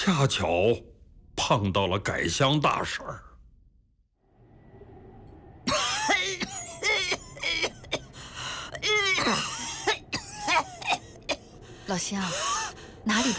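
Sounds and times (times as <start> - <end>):
speech: 0.0 - 3.3, 9.3 - 9.5, 11.9 - 13.3
person coughing in rough broken bursts: 5.7 - 8.1, 8.8 - 11.5.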